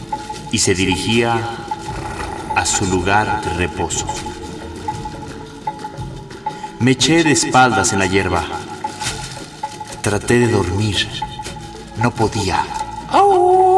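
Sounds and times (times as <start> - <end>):
speech: 0.5 - 1.7, 2.6 - 4.4, 6.8 - 8.7, 10.0 - 11.3, 12.0 - 13.6
distant jackal howling: 1.5 - 6.8.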